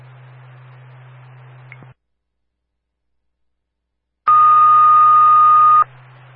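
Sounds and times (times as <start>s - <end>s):
fire department dispatch paging test tone: 4.3s - 5.9s.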